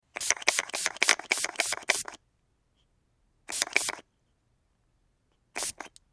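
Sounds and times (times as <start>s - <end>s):
hairspray spraying: 0.2s - 2.2s, 3.5s - 4.0s, 5.6s - 5.9s.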